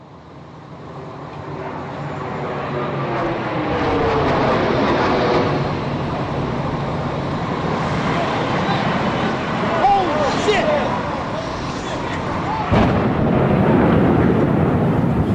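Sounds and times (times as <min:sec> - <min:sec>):
airplane crashing into a building roaring and rumbling: 0:01.0 - 0:15.3
voices: 0:06.9 - 0:13.1.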